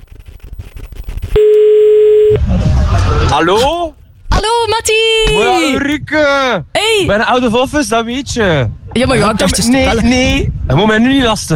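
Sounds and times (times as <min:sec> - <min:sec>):
telephone ringback tone: 0:01.4 - 0:02.4
speech: 0:03.3 - 0:11.5.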